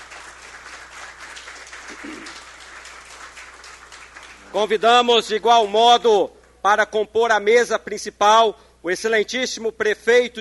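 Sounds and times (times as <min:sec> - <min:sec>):
audience applause at a municipal council session: 0:00.0 - 0:05.0
speech: 0:01.9 - 0:02.5, 0:04.5 - 0:10.4.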